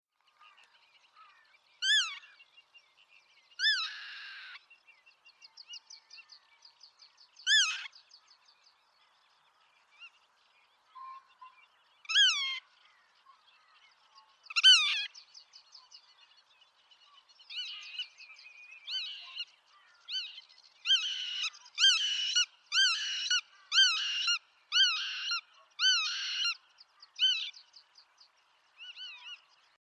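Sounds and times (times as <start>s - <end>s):
black-tailed godwit Limosa limosa calls: 1.2s - 2.4s, 3.6s - 4.6s, 7.4s - 8.0s, 10.9s - 13.7s, 14.3s - 15.2s, 18.9s - 27.6s.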